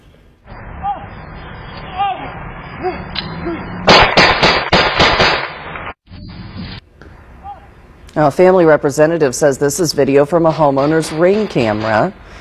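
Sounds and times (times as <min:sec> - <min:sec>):
gunshots fired at night: 0:03.2 - 0:06.0, 0:10.3 - 0:12.3
speech: 0:08.2 - 0:12.3.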